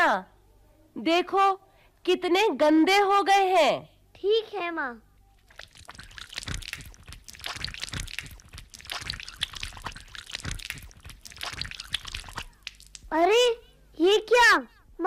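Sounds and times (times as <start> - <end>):
speech: 0.1 - 0.3, 1.0 - 5.1, 13.1 - 15.0
tap water running and splashing into a basin: 5.5 - 13.1.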